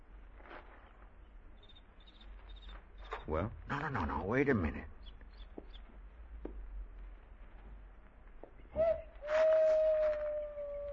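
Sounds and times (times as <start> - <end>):
speech: 3.3 - 5.0
owl hooting: 8.8 - 10.9.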